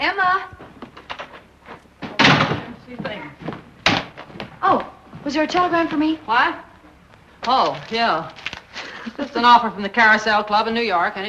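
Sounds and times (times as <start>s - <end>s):
shuffling: 0.4s - 9.6s
door banging open: 2.0s - 2.8s, 3.8s - 4.3s
door shutting: 2.0s - 2.8s
speech: 4.6s - 6.7s, 7.4s - 8.4s, 9.1s - 11.2s.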